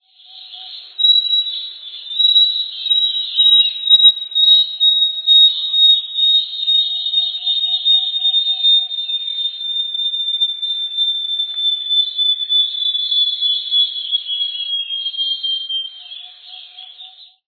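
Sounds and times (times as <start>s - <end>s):
uirapuru-de-asa-branca singing: 0.0s - 17.4s.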